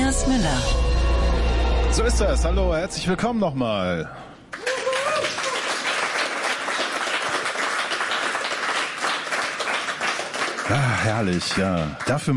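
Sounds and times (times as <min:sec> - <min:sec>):
speech: 0:00.2 - 0:00.9, 0:02.0 - 0:04.3, 0:10.7 - 0:12.3
studio audience applause at a live radio broadcast in Berlin: 0:04.5 - 0:12.3
person whooping in a studio audience: 0:04.6 - 0:05.7.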